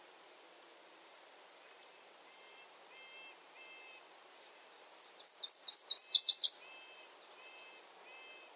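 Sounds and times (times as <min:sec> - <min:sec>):
Nashville warbler Leiothlypis ruficapilla song in Quebec: 0:01.8 - 0:08.5.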